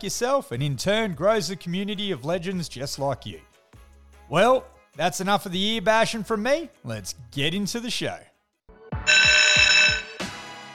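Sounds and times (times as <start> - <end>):
speech: 0.0 - 3.5, 4.3 - 8.3
harsh buzzer blaring: 9.1 - 10.4.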